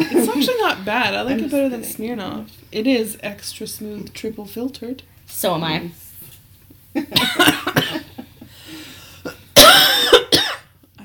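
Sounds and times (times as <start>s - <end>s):
speech: 0.8s - 6.0s, 6.9s - 8.1s
person coughing with a raspy throaty wheeze: 7.1s - 8.2s, 9.2s - 10.7s
rough throaty wheeze: 8.4s - 9.6s.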